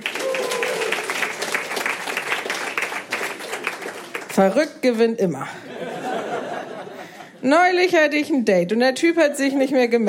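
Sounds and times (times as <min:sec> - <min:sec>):
audience clapping to cast a vote: 0:00.0 - 0:04.9
speech: 0:04.4 - 0:05.7, 0:07.4 - 0:10.0
laughter: 0:05.6 - 0:07.4.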